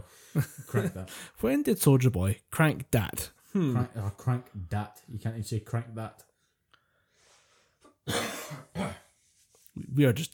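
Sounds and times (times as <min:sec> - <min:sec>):
speech: 0:00.4 - 0:06.3, 0:09.8 - 0:10.3
breath: 0:01.1 - 0:01.4, 0:06.4 - 0:07.9
harsh throaty coughs turned away from the microphone: 0:08.0 - 0:09.2.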